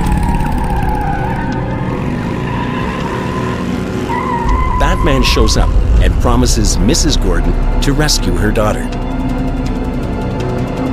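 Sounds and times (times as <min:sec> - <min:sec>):
tire squeal: 0:00.0 - 0:05.8
racing engines of a motorbike and car roaring: 0:00.0 - 0:10.9
speech: 0:05.0 - 0:09.0.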